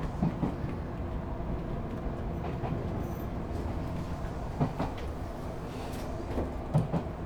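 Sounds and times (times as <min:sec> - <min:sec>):
train rolling along the rails near Hakone Japan: 0:00.0 - 0:07.2.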